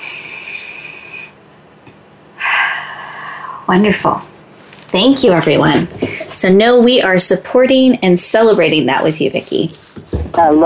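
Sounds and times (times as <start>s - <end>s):
deep breath during a group breathing exercise: 0.0s - 1.4s, 2.4s - 3.7s
speech: 3.7s - 4.3s, 4.9s - 10.6s.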